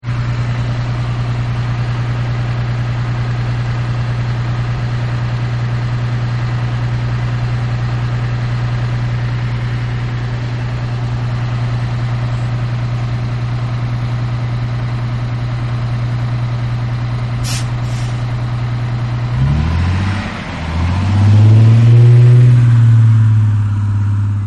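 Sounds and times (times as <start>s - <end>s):
bus engine purring while driving off: 0.0s - 24.4s
bus door closing: 17.4s - 18.2s.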